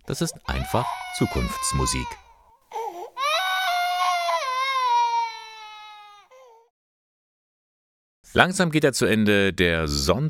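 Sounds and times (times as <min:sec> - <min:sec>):
speech: 0:00.1 - 0:02.2, 0:08.4 - 0:10.2
baby crying: 0:00.5 - 0:06.7.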